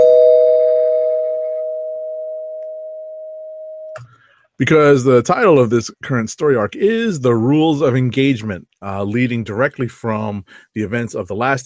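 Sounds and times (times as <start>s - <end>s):
bell struck as a spoiler warning: 0.0s - 4.0s
speech: 4.6s - 11.6s.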